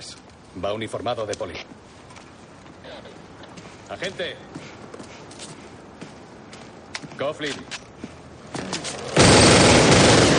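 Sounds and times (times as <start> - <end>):
speech: 0.0 - 2.0, 3.9 - 4.5, 7.2 - 7.8
rapid repeated gunshots: 9.1 - 10.3.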